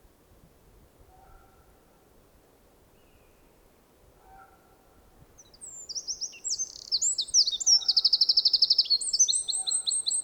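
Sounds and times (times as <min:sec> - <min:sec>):
Eurasian wren singing a rapid shrill song: 0:05.4 - 0:10.2.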